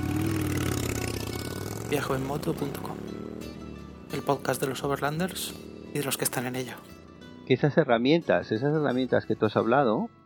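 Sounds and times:
motorcycle engine idling while shifted into first gear: 0:00.0 - 0:07.4
speech: 0:01.9 - 0:02.9, 0:04.1 - 0:06.9, 0:07.5 - 0:10.2.

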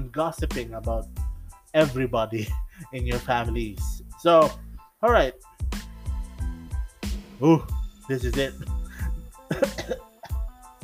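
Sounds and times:
speech: 0:00.1 - 0:05.5, 0:07.4 - 0:08.8, 0:09.5 - 0:10.0
person coughing: 0:08.9 - 0:10.5.

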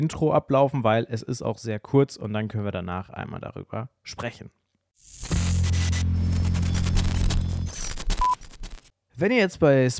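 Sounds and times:
speech: 0:00.0 - 0:06.2, 0:09.2 - 0:09.9
deep electrical hum: 0:05.0 - 0:08.9
harsh glitchy static: 0:05.0 - 0:08.9
stuttering digital crackles: 0:05.0 - 0:08.9.

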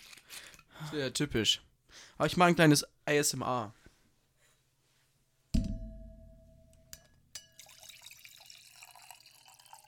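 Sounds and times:
speech: 0:00.8 - 0:03.8
small glass clinks: 0:06.0 - 0:09.7
Pinot Blanc white wine pouring into a glass: 0:07.5 - 0:09.8.

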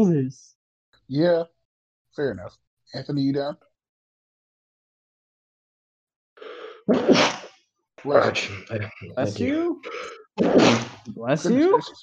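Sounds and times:
speech: 0:00.0 - 0:00.5, 0:01.1 - 0:01.6, 0:02.2 - 0:03.7, 0:06.9 - 0:07.4, 0:08.0 - 0:12.0
person sneezing: 0:06.9 - 0:07.5, 0:09.9 - 0:11.6.

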